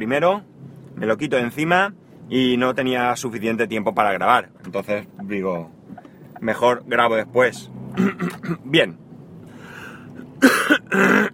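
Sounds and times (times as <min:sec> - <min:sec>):
speech: 0:00.0 - 0:05.8, 0:06.4 - 0:09.0, 0:10.4 - 0:11.3
rough harsh coughs: 0:08.0 - 0:08.6, 0:10.4 - 0:11.3.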